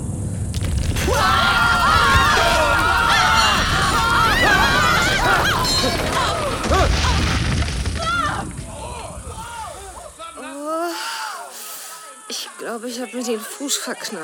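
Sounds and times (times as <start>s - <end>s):
deep earthquake rumbling roar: 0.5s - 10.0s
debris crashing: 0.5s - 10.3s
crowd of people screaming and shrieking: 0.9s - 13.7s
speech: 12.8s - 14.2s.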